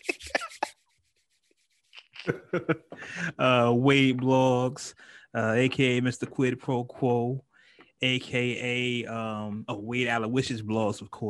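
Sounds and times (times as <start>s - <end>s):
laughter: 0.0s - 0.7s, 2.0s - 3.7s
hands rubbing together: 0.0s - 2.4s
speech: 2.3s - 11.2s.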